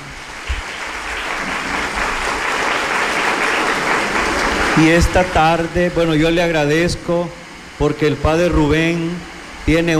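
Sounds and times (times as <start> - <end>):
audience applause: 0.4 - 5.2
speech: 4.8 - 9.9.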